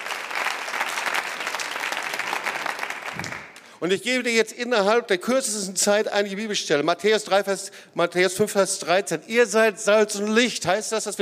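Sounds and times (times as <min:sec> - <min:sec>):
crowd applauding: 0:00.0 - 0:03.8
speech: 0:03.8 - 0:11.2.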